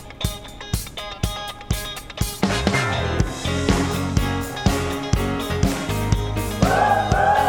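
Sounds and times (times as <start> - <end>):
steady driving beat: 0.0 - 7.4
soul choir of about 40 singers singing a cover song: 6.6 - 7.4.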